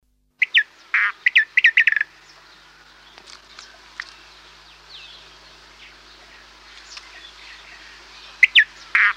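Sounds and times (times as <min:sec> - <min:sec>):
Many-colored rush tyrant territorial song in Chile: 0:00.4 - 0:09.1.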